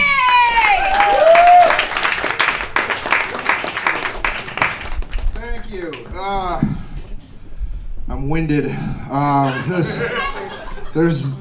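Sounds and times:
audience applause for a comedian: 0.0s - 7.4s
laughter: 0.0s - 7.4s, 9.1s - 11.4s
speech: 8.4s - 10.3s, 10.9s - 11.4s.

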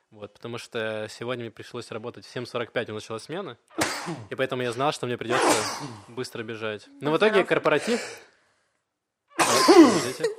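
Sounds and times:
speech: 0.1s - 8.3s, 9.7s - 10.3s
loud sneeze from a person with a cold: 3.8s - 4.3s, 5.3s - 6.2s, 9.4s - 10.3s.

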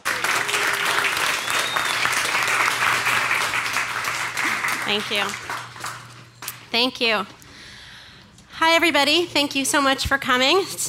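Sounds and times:
crowd applauding: 0.0s - 6.7s
speech: 4.9s - 5.4s, 6.7s - 7.4s, 8.6s - 10.8s.

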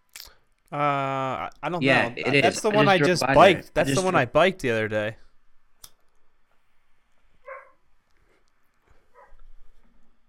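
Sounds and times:
faint hum: 0.1s - 10.2s
speech: 0.7s - 5.2s
laughter: 1.8s - 4.2s
dog barking: 7.4s - 7.8s, 9.1s - 9.4s.

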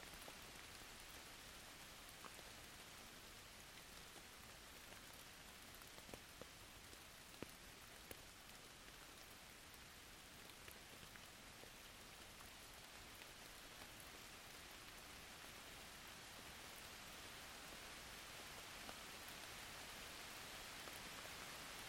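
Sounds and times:
soft rain falling: 0.0s - 21.8s.

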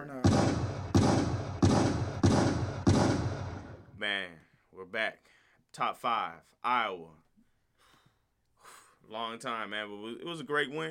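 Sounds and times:
gunshot sound effects with long decay: 0.2s - 4.0s
speech: 4.0s - 7.2s, 9.0s - 10.8s.

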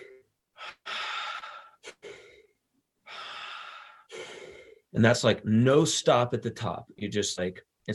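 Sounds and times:
person demonstrating circular breathing with airy inhales and exhales: 0.0s - 4.9s
speech: 4.9s - 7.9s.

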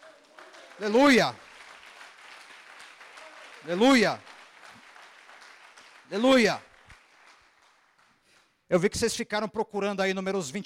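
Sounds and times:
large crowd applauding: 0.0s - 8.5s
speech: 0.8s - 1.4s, 3.6s - 4.3s, 6.1s - 6.7s, 8.7s - 10.6s.

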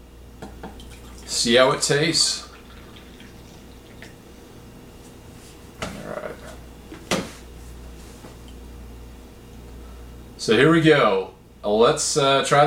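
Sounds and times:
speech: 1.3s - 2.5s, 10.4s - 12.6s
remineralized mold-free coffee pouring into a cup: 2.0s - 4.2s.

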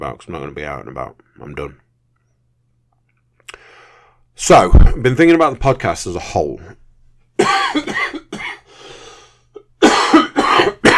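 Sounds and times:
speech: 0.0s - 1.8s, 4.4s - 6.8s
wheezy breath in: 3.5s - 4.2s, 8.7s - 9.6s
person coughing harshly: 7.4s - 8.7s, 9.7s - 10.9s.

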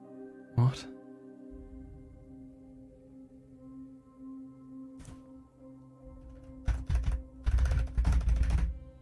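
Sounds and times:
speech: 0.6s - 0.9s
typing on a keyboard: 6.3s - 8.8s.

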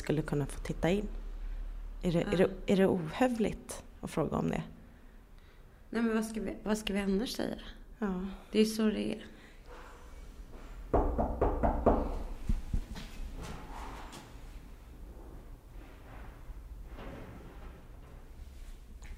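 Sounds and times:
speech: 0.0s - 1.2s, 2.0s - 4.8s, 5.9s - 9.4s
firm knocks on a wooden house door: 10.9s - 12.9s.

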